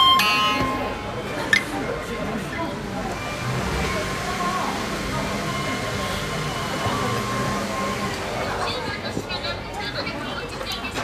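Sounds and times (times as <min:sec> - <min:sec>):
overlapping voices chattering inside a sushi restaurant: 0:00.0 - 0:11.0.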